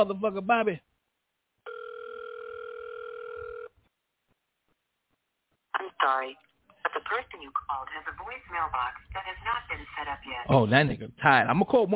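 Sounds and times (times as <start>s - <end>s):
speech: 0.0s - 0.9s, 6.0s - 11.9s
telephone ringback tone on an outgoing call: 1.6s - 3.8s.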